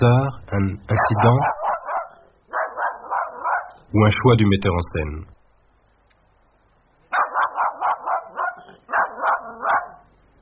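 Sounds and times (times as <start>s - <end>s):
speech: 0.0s - 1.6s, 3.9s - 5.4s
dog barking: 0.9s - 3.8s, 7.1s - 10.1s.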